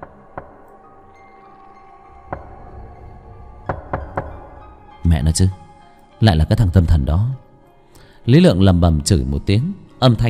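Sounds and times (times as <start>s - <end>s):
knocking on a hospital room door: 3.6s - 4.5s
speech: 5.1s - 5.6s, 6.2s - 7.4s, 8.2s - 10.2s.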